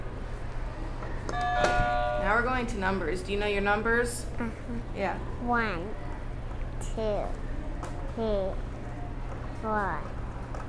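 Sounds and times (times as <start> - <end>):
low hum: 0.0 - 10.6
electronic buzzer button beeping: 1.3 - 2.4
speech: 2.4 - 6.1, 6.8 - 7.5, 8.2 - 8.7, 9.6 - 10.2.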